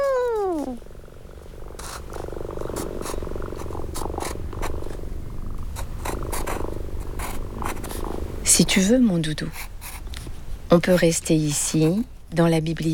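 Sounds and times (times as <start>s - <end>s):
cat meowing: 0.0s - 0.8s
cat purring: 0.0s - 8.5s
speech: 8.6s - 9.7s, 10.7s - 12.9s.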